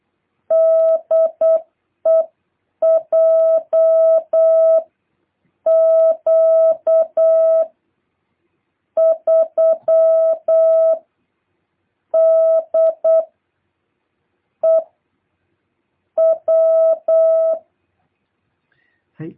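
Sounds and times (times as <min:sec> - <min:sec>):
Morse code call sign beeps: 0:00.5 - 0:04.8, 0:05.7 - 0:07.7, 0:09.0 - 0:11.0, 0:12.2 - 0:13.3, 0:14.6 - 0:14.8, 0:16.2 - 0:17.6.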